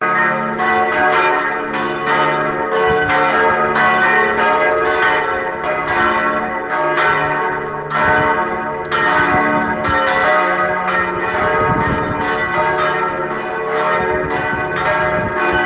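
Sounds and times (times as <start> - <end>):
church bells ringing: 0.0 - 15.6.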